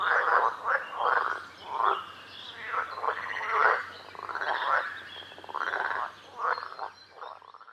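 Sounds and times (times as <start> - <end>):
frogs croaking in a chorus: 0.0 - 7.7.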